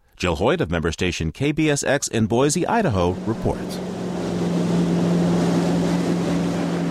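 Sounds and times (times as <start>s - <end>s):
speech: 0.2s - 4.0s
metal jet boat engine drone on the Snake River: 2.5s - 6.9s
wind: 2.5s - 6.9s
rushing river water: 2.7s - 6.9s.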